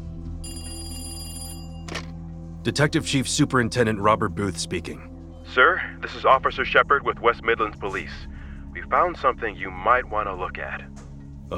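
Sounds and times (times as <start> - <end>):
bright metallic telephone bell ringing: 0.4 - 2.1
speech: 2.6 - 11.5.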